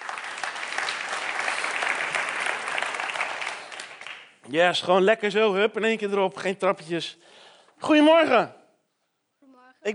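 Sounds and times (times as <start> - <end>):
crowd clapping at a church service: 0.0 - 4.5
speech: 4.5 - 8.6.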